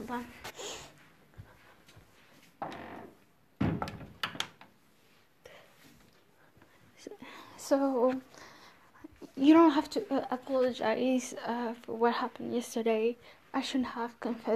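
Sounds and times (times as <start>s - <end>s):
speech: 0.1s - 0.9s, 7.7s - 8.4s, 9.4s - 14.5s
door being pushed shut: 2.6s - 4.6s.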